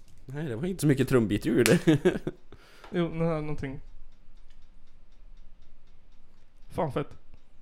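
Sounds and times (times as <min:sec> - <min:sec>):
speech: 0:00.3 - 0:03.9, 0:06.8 - 0:07.2
laughter: 0:01.6 - 0:02.4
hi-hat ticking in a beat: 0:03.1 - 0:07.6.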